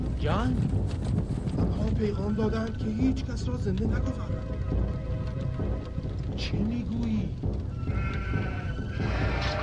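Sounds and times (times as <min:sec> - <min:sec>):
speech: 0:00.2 - 0:05.1, 0:06.4 - 0:09.6
sheep bleating at a desert tribal encampment: 0:07.7 - 0:09.6.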